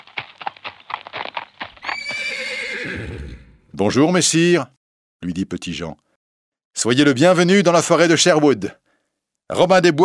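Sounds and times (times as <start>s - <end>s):
horse hooves clip-clopping: 0.0s - 2.5s
horse neighing: 1.8s - 3.6s
speech: 2.8s - 6.1s, 6.7s - 8.8s, 9.5s - 10.0s.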